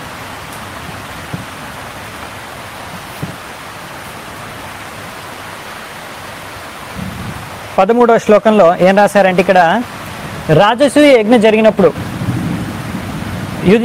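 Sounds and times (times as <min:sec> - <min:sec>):
light rain drizzling indoors: 0:00.0 - 0:13.8
rain drops tapping indoors: 0:01.2 - 0:01.6
speech: 0:07.8 - 0:12.1, 0:13.6 - 0:13.8.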